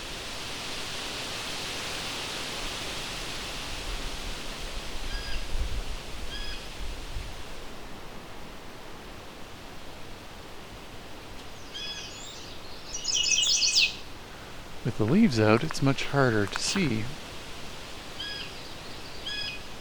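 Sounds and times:
steady loud hiss: 0.0 - 19.7
faint bird chirps: 11.6 - 14.0
chestnut-sided warbler singing: 11.6 - 14.1
speech: 14.9 - 17.2.

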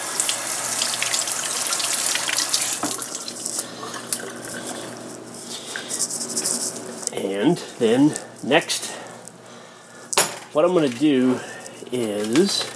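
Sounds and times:
tap water running over a potato being rinsed: 0.0 - 5.0
speech: 7.4 - 8.9, 10.6 - 12.7.

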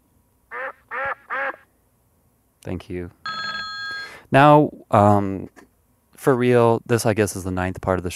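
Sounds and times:
person imitating duck quacks: 0.5 - 1.6
speech: 2.6 - 3.2, 4.3 - 8.1.

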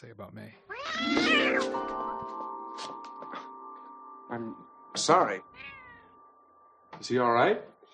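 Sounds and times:
speech: 0.0 - 2.9, 4.3 - 5.7, 7.0 - 7.9
cat meowing: 0.7 - 1.7, 5.6 - 6.1
faint steady wailing tone: 0.8 - 2.2, 4.3 - 7.5.

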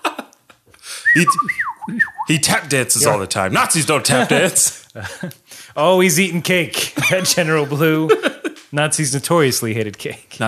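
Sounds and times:
person whistling a short sliding melody: 1.0 - 2.3
speech: 1.2 - 10.4
laughter: 4.0 - 5.4, 6.8 - 8.6.

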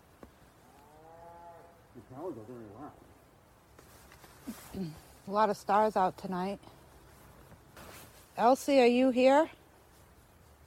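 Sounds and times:
faint outdoor noise: 0.0 - 10.6
cow mooing: 0.7 - 1.8
speech: 2.0 - 3.2, 4.4 - 6.8, 8.4 - 9.6.

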